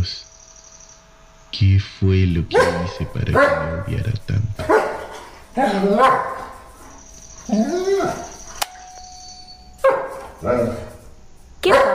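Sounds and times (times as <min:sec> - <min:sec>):
high whine: 0:00.0 - 0:11.6
speech: 0:01.6 - 0:04.9, 0:05.6 - 0:06.5, 0:07.5 - 0:08.3, 0:10.4 - 0:10.9
dog barking: 0:02.5 - 0:04.0, 0:04.6 - 0:06.8, 0:09.8 - 0:11.0, 0:11.6 - 0:11.9
sharp click: 0:08.5 - 0:09.2.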